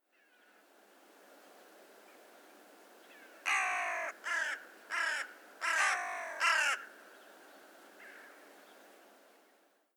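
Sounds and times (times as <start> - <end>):
hooded crow Corvus cornix calling: 3.5 - 6.9.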